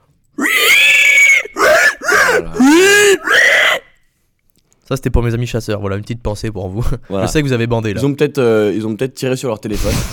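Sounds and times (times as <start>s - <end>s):
person imitating a pig squealing as it is slaughtered: 0.4s - 4.0s
speech: 4.9s - 10.1s.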